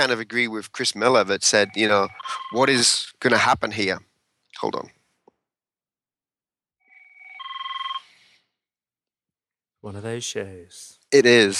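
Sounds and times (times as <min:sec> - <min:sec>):
speech: 0:00.0 - 0:05.0, 0:09.8 - 0:11.5
new phone ringing with a trilling electronic tone: 0:01.6 - 0:02.8, 0:07.0 - 0:08.2.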